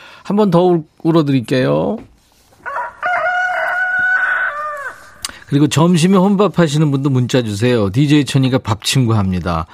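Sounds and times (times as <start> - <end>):
speech: 0.3 - 2.1, 5.5 - 9.7
rooster crowing: 2.6 - 5.4.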